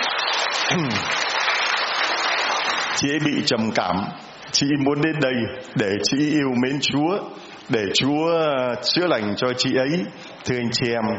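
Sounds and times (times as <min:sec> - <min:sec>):
crowd applauding at a religious gathering: 0:00.0 - 0:03.3
speech: 0:00.7 - 0:01.2, 0:03.0 - 0:11.1.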